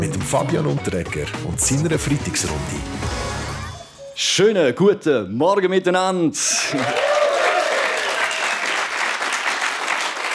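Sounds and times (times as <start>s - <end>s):
speech: 0.3s - 3.3s, 4.2s - 7.2s
live studio audience applauding in a radio studio: 6.7s - 10.3s.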